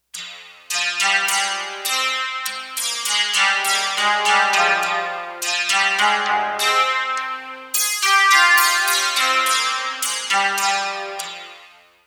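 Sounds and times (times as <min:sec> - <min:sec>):
shamisen on a digital synthesizer: 0:00.3 - 0:11.7.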